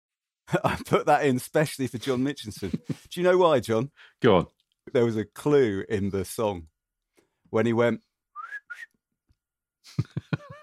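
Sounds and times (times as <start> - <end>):
laughter: 0.5 - 3.1, 9.9 - 10.6
speech: 0.5 - 6.7, 7.5 - 8.1
whistled traditional Japanese shepherd song: 8.3 - 9.0.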